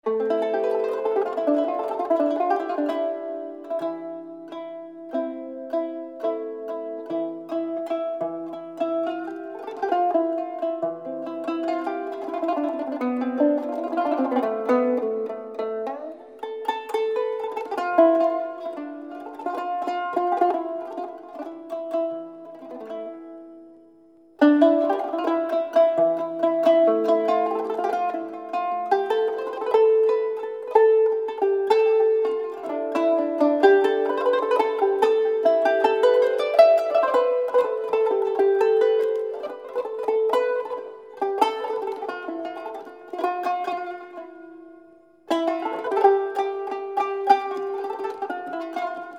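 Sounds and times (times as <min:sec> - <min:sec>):
kanun taksim in makam nihavend: 0:00.0 - 0:49.1.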